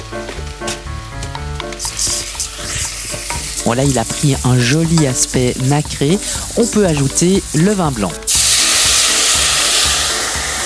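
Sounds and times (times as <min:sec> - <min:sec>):
rice sizzling in fat with sauteed onion in a hot saucepan: 0:01.8 - 0:10.6
speech: 0:03.7 - 0:08.4.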